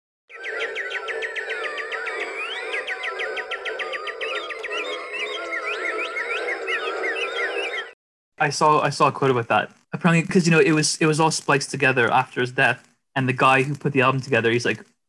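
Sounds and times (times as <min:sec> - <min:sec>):
dense chorus of birds chirping and trilling: 0:00.3 - 0:08.0
speech: 0:08.4 - 0:14.9.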